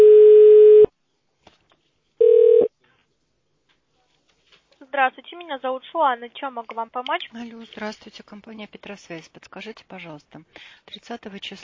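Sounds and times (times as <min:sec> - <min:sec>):
telephone line tones while a call is connected to an operator: 0:00.0 - 0:00.9, 0:02.2 - 0:02.7
speech: 0:05.0 - 0:11.6.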